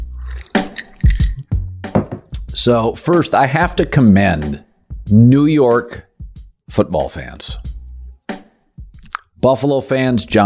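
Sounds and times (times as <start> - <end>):
liquid pouring into a glass: 0.0 - 1.6
speech: 2.6 - 6.1, 6.7 - 7.7, 9.4 - 10.4.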